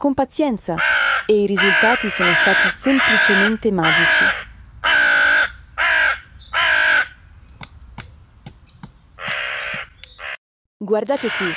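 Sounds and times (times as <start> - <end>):
speech: 0.0 - 4.5, 10.9 - 11.5
hooded crow cawing harshly: 0.8 - 7.3, 9.2 - 10.4, 11.2 - 11.5.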